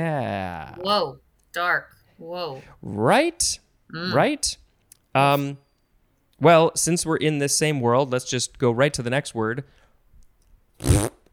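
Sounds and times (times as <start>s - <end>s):
speech: 0.0s - 4.6s, 5.2s - 5.6s, 6.4s - 9.8s
fart: 10.8s - 11.3s.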